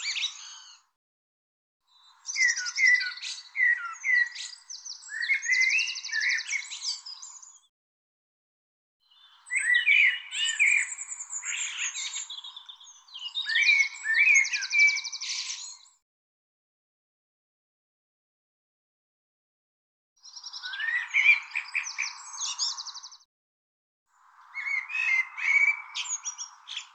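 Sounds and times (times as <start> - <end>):
bird song with rapid varied twittering and buzzy trills: 0.0 - 0.9, 1.9 - 7.7, 9.0 - 16.0, 20.2 - 23.3, 24.2 - 26.9.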